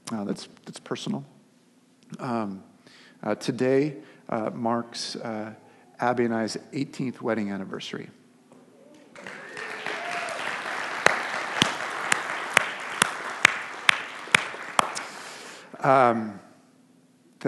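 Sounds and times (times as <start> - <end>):
speech: 0.1 - 1.4, 2.1 - 8.2, 15.8 - 16.4
audience applause: 9.1 - 15.6
sharp individual claps: 9.2 - 15.3.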